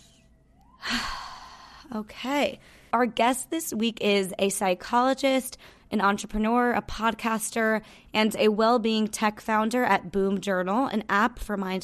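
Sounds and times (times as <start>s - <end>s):
deep breath in and out: 0.8s - 1.9s
speech: 1.9s - 11.8s.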